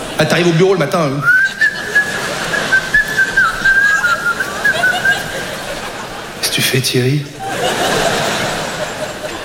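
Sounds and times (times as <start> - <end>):
soft noisy murmur: 0.0 - 9.4
speech: 0.2 - 1.6, 6.6 - 7.8
person whistling a lilting tune: 1.2 - 5.2
laughter: 1.2 - 9.4.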